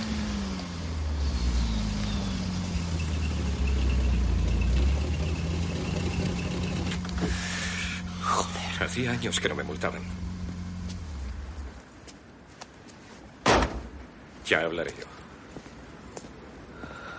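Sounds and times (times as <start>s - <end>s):
sports car engine rumble while stopping: 0.0s - 14.4s
road noise: 0.0s - 17.1s
speech: 9.0s - 10.3s, 14.5s - 15.2s.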